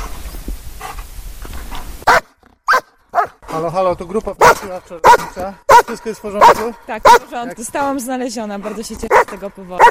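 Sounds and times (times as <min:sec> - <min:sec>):
shepherd rescue dog barking at a found person in a forest: 0:02.0 - 0:03.5, 0:04.4 - 0:07.4, 0:08.6 - 0:09.8
speech: 0:03.6 - 0:09.8.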